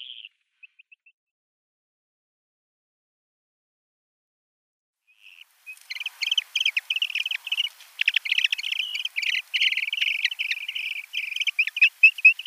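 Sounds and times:
Eurasian dotterel display calls: 0.0s - 1.0s, 5.1s - 12.4s.

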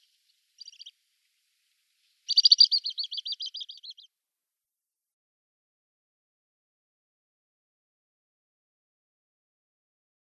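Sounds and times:
male little stint display song trill in display flight: 2.3s - 4.1s.

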